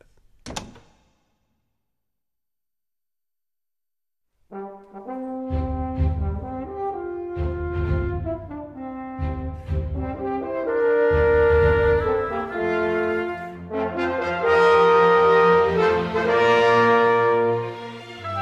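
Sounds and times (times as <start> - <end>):
bedroom door quietly shut and locked: 0.4 - 1.2
music: 4.4 - 18.4.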